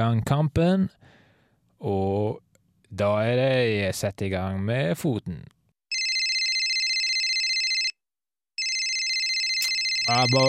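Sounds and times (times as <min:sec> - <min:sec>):
speech: 0:00.0 - 0:01.0, 0:01.8 - 0:05.6, 0:10.1 - 0:10.4
phone ringtone ringing: 0:05.9 - 0:08.0, 0:08.6 - 0:10.4.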